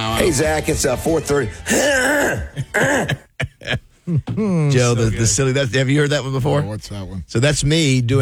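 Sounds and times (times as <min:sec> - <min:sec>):
speech: 0:00.2 - 0:08.2
throat clearing while trying to record a voice text: 0:01.7 - 0:04.7.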